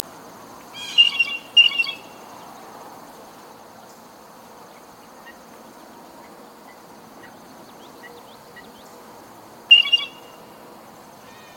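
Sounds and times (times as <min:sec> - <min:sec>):
blue jay harsh rasping calls: 0:00.7 - 0:02.2, 0:09.7 - 0:10.5.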